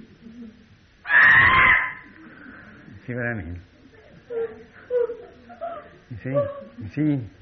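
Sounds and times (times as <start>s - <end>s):
child screaming: 1.1s - 2.1s
speech: 3.1s - 3.7s, 6.1s - 7.4s.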